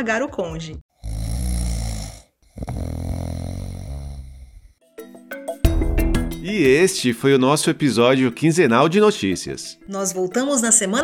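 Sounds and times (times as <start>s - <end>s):
speech: 0.0s - 0.9s, 6.4s - 11.0s
person snoring: 0.9s - 4.8s.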